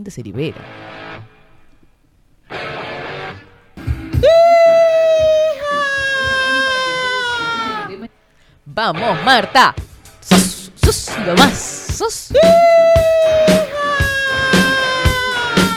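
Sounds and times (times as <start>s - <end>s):
speech: 0.0s - 1.3s, 8.7s - 10.5s, 11.2s - 13.7s
background music: 2.6s - 8.1s, 8.9s - 15.7s
person screaming long and strained: 4.2s - 8.1s, 12.3s - 15.7s.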